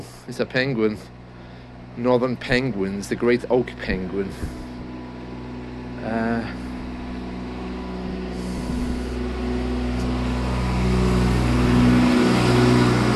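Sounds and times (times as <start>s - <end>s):
truck engine droning with a deep tonal hum at speed: 0.0s - 13.1s
speech: 0.3s - 1.2s, 2.0s - 4.6s, 6.0s - 6.6s.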